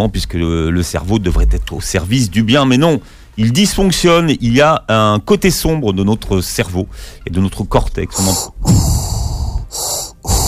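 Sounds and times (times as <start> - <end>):
speech: 0.0 - 9.0
mechanical respirator breathing effect: 8.1 - 10.4.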